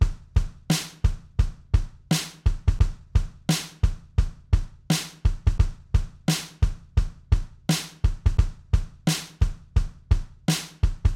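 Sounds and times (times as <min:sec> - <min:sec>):
swinging bass drum: 0:00.0 - 0:11.1.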